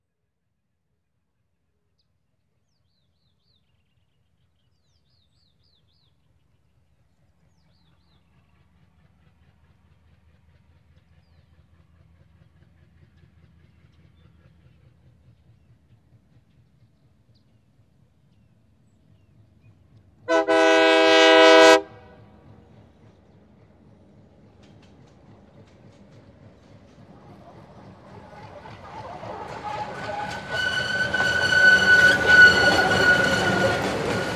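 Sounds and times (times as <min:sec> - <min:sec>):
passenger train passing on the Altiplano: 0:04.9 - 0:34.3
train whistle: 0:20.3 - 0:22.2, 0:28.4 - 0:34.3.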